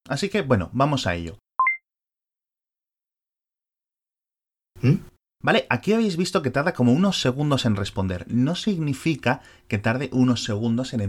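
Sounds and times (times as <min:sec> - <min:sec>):
speech: 0:00.1 - 0:01.4, 0:04.8 - 0:11.0
two-tone electronic censoring bleep over spoken words: 0:01.6 - 0:01.8.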